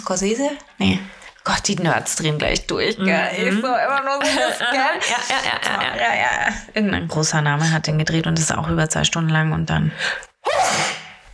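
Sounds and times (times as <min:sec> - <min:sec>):
speech: 0:00.0 - 0:11.0
laughter: 0:03.4 - 0:06.6
person sneezing forcefully: 0:10.4 - 0:11.3.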